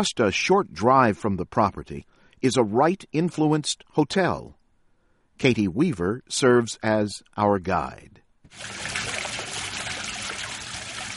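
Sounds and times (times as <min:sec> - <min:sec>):
speech: 0:00.0 - 0:04.6, 0:05.4 - 0:09.1
fountain water trickling and splashing onto the ground in Arizona foothills: 0:08.5 - 0:11.1.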